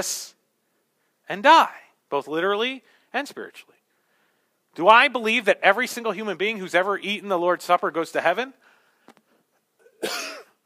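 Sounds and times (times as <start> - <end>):
speech: 0.0 - 0.4, 1.3 - 3.8, 4.8 - 9.2, 10.0 - 10.4
faint breath: 3.9 - 4.6, 8.6 - 9.6
harsh throaty cough: 9.8 - 10.6.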